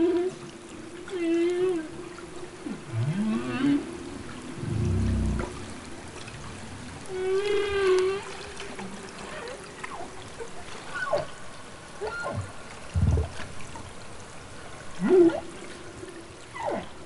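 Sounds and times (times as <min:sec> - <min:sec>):
humpback whale social calls recorded underwater: 0:00.0 - 0:11.4, 0:12.0 - 0:13.3, 0:15.0 - 0:15.7, 0:16.5 - 0:17.0
deep low thumps underwater: 0:04.6 - 0:05.6, 0:13.0 - 0:13.4.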